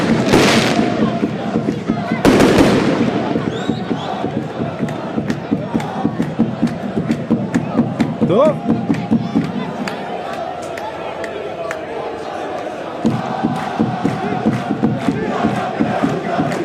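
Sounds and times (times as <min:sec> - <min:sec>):
pyrotechnic fireworks exploding outside a stadium: 0:00.0 - 0:01.4, 0:02.2 - 0:03.8
loud roaring crowd of fans: 0:00.0 - 0:16.6.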